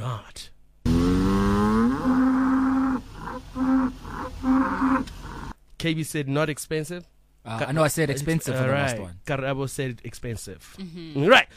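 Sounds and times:
cow mooing: 0.9 - 5.6
speech: 5.8 - 11.5.

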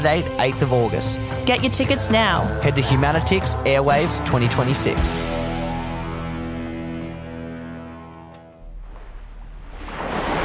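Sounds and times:
speech: 0.0 - 5.5
steady droning tone: 1.2 - 8.8
rushing wash of ocean surf: 9.0 - 10.4.

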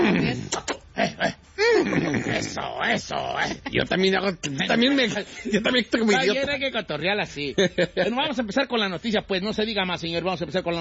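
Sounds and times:
person imitating a horse whinny and snorts: 0.0 - 3.7
speech: 2.5 - 10.7.

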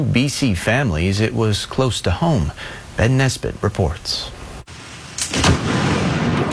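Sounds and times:
speech: 0.0 - 4.4
lightning striking a tree in a park in North Vancouver: 4.7 - 6.5
loud rolling thunder boom during a thunderstorm over North Vancouver: 5.3 - 6.5.

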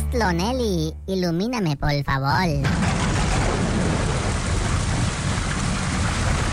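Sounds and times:
speech: 0.1 - 3.0
deep rumbling thunder: 2.6 - 6.5
heavy rain in a thunderstorm: 2.7 - 6.5.

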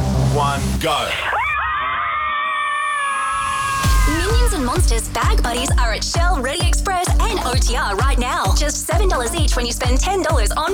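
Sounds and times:
speech: 0.5 - 1.3, 4.5 - 10.7
group of women screaming together: 1.3 - 4.7.

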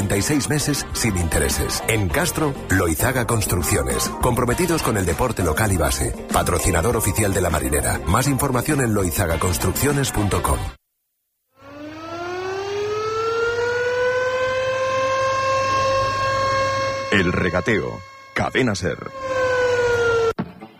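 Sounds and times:
speech: 0.1 - 10.8, 17.1 - 19.4
fishermen's guild siren wailing: 11.6 - 20.4.

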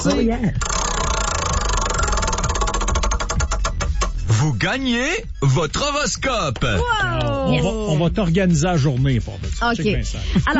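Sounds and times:
speech: 0.0 - 1.1, 4.4 - 10.5
game show prize wheel spinning and ticking: 0.6 - 4.2.

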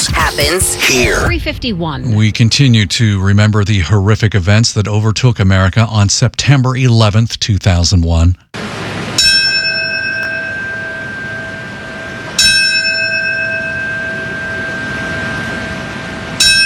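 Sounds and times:
speech: 0.4 - 9.4
single large memorial bell tolling: 9.1 - 16.6.

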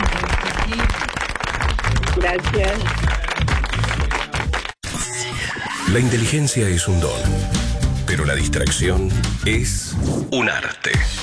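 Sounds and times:
live audience applause: 0.0 - 4.8
speech: 2.2 - 3.5, 5.9 - 11.2
scattered audience voices: 5.5 - 11.2.

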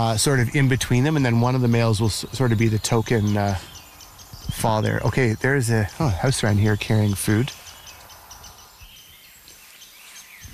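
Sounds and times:
speech: 0.0 - 3.7, 4.5 - 7.6
steady outdoor rumble of wind: 0.0 - 9.2
rose-breasted grosbeak singing warbling phrases: 0.0 - 10.5.

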